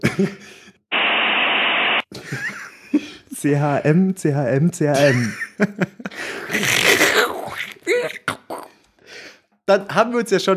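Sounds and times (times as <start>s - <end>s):
speech: 0.2s - 0.6s, 3.4s - 7.0s, 9.7s - 10.5s
56K dial-up modem connection noise: 0.9s - 2.1s.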